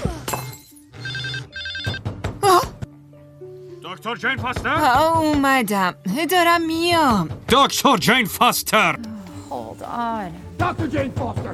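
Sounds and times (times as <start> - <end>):
telephone ringing in short electronic bursts: 0.9 - 2.1
speech: 3.9 - 9.1, 9.8 - 11.5.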